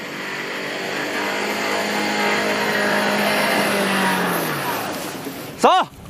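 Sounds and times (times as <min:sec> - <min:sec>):
off-road car engine revving while stuck in mud on a rain-soaked off-road course: 0:00.0 - 0:05.6.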